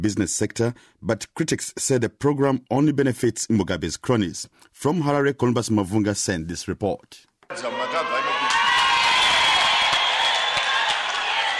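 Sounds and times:
speech: 0:00.0 - 0:08.0
delegates whooping: 0:07.5 - 0:11.5
party conference delegates cheering and shouting: 0:07.5 - 0:11.5.

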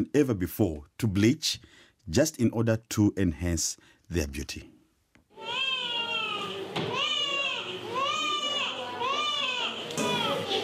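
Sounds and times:
speech: 0:00.0 - 0:04.8
newborn babies crying in a hospital room in Accra: 0:05.4 - 0:10.6.

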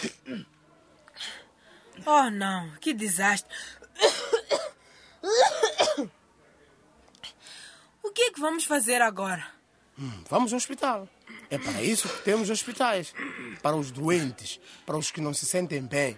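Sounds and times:
person coughing harshly: 0:00.0 - 0:00.5, 0:04.0 - 0:06.1, 0:11.3 - 0:12.6
speech: 0:00.0 - 0:00.5, 0:02.0 - 0:06.2, 0:08.2 - 0:16.1.

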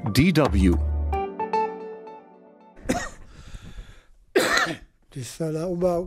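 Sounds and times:
speech: 0:00.2 - 0:00.9, 0:05.2 - 0:06.0
harsh dry chest coughs: 0:02.8 - 0:03.3, 0:04.3 - 0:05.0.

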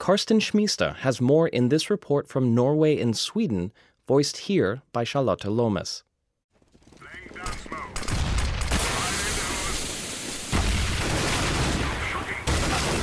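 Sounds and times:
speech: 0:00.0 - 0:06.1
video game gunfight gunfire between soldiers and terrorists on Middle Eastern streets: 0:06.6 - 0:13.0
booming blasts in a video game gunfight: 0:06.8 - 0:13.0.

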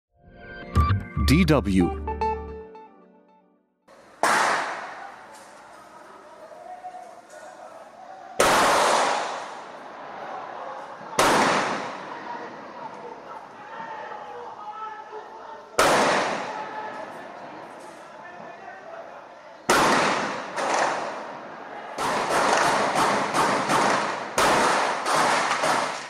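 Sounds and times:
speech: 0:01.3 - 0:02.1
gunshots echoing across a favela in Rio de Janeiro: 0:04.2 - 0:05.2, 0:08.4 - 0:09.7, 0:11.2 - 0:12.2, 0:15.8 - 0:16.6, 0:19.7 - 0:21.3, 0:22.0 - 0:26.0.

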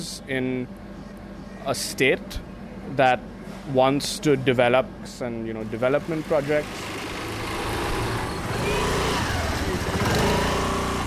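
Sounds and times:
speech: 0:00.0 - 0:00.9, 0:01.6 - 0:07.0
small two-wheel motor scooters riding on a bumpy dirt path in North Goa: 0:06.3 - 0:11.0.

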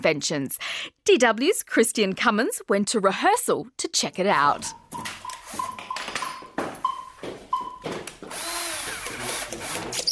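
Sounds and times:
speech: 0:00.0 - 0:05.7
small drill whirring and boring into a cucumber: 0:08.3 - 0:10.1.

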